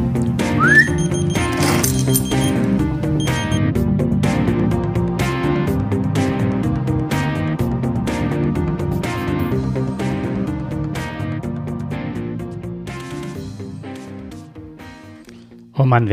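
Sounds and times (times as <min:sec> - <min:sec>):
busy music: 0:00.0 - 0:16.1
short rising whistle to trigger a key finder: 0:00.6 - 0:01.2
speech: 0:15.8 - 0:16.1.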